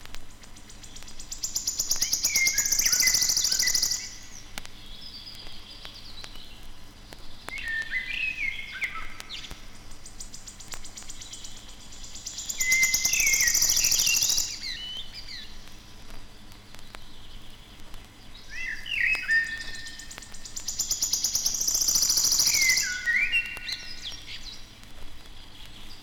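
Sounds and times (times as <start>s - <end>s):
wood warbler high shivering trill: 1.2s - 4.3s, 12.0s - 14.8s, 18.5s - 23.8s
Common Blackbird singing whistled phrases: 1.6s - 4.2s, 7.5s - 9.5s, 12.4s - 15.4s, 18.5s - 24.4s.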